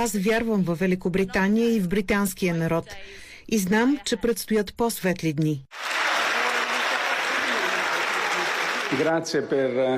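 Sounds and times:
speech: 0.0 - 6.0, 8.9 - 9.9
crowd applause: 5.7 - 9.4.

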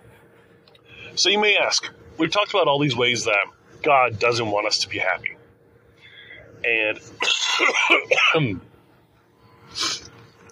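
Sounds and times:
speech: 1.2 - 5.3, 6.6 - 8.7
person coughing harshly: 7.2 - 8.5.

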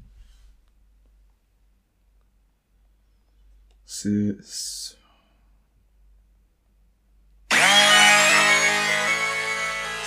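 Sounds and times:
speech: 3.9 - 5.0
instrumental music with buzzing distorted sustained synth tones: 7.5 - 10.0.

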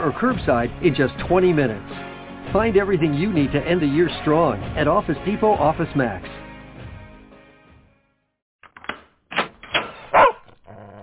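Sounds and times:
speech: 0.0 - 1.9, 2.5 - 6.4
dog barking: 10.1 - 11.0.

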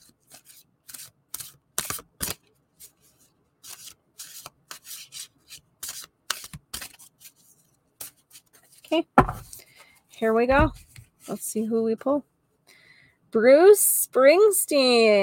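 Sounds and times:
oracle card deck being shuffled: 0.0 - 9.7
speech: 10.2 - 12.3, 13.3 - 15.2.

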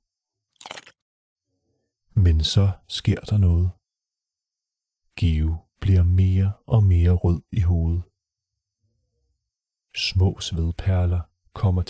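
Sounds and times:
crisp crunchy bite into a red chili pepper: 0.5 - 1.0
speech: 2.2 - 3.8, 5.2 - 8.1, 10.0 - 11.8.

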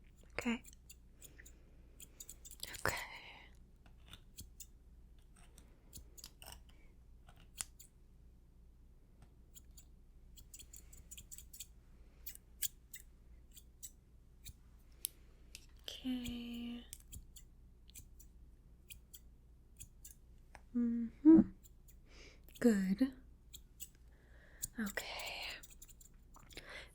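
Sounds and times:
scissors trimming hair around a beard: 0.0 - 3.0, 4.0 - 6.7, 7.3 - 7.9, 9.6 - 18.3, 18.9 - 19.2, 19.8 - 20.2, 21.6 - 22.8, 23.5 - 24.0, 24.6 - 26.6
speech: 0.4 - 0.8, 22.6 - 23.2.

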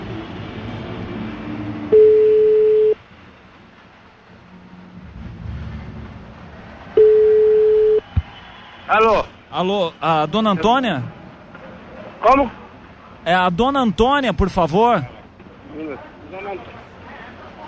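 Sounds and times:
ringing tone on a phone line while a call connects: 1.9 - 3.0, 7.0 - 8.0
speech: 8.9 - 11.2, 12.2 - 12.6, 13.2 - 15.2.

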